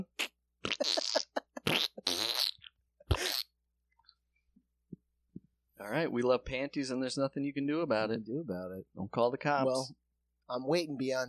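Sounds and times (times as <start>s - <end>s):
fart sound effects: 0.0s - 3.6s
speech: 0.8s - 1.2s, 5.9s - 11.2s.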